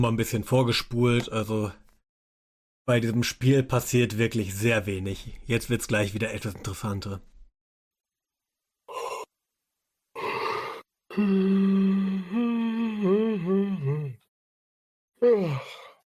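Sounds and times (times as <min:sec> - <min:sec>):
speech: 0:00.0 - 0:01.8, 0:02.9 - 0:07.3, 0:11.2 - 0:14.2, 0:15.2 - 0:15.8
person sighing: 0:08.9 - 0:09.3, 0:10.2 - 0:14.2, 0:15.2 - 0:16.0
person yawning: 0:08.9 - 0:09.3, 0:10.2 - 0:14.2, 0:15.2 - 0:16.0.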